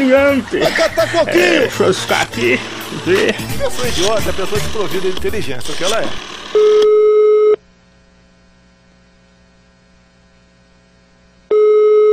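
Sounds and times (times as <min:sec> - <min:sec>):
laughter: 0:00.0 - 0:06.2
speech: 0:00.0 - 0:07.1
faint hum: 0:00.0 - 0:12.1
telephone ringback tone while placing a call: 0:04.6 - 0:07.6, 0:11.5 - 0:12.1.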